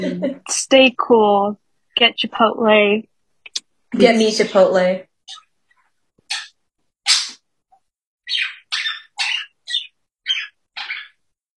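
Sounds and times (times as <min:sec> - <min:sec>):
speech: 0:00.0 - 0:03.1, 0:03.9 - 0:05.4
parakeet chirping: 0:05.2 - 0:05.5, 0:06.2 - 0:07.4, 0:08.2 - 0:11.4.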